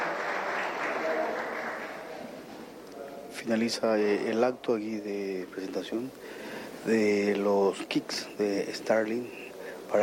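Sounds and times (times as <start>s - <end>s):
crowd applause at an event launching Starlink kits for school connectivity: 0.0s - 2.5s
speech: 3.4s - 10.0s.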